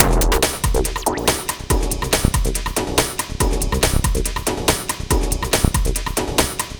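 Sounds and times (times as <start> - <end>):
bass: 0.0 - 6.7
cranking drum beat: 0.0 - 6.7.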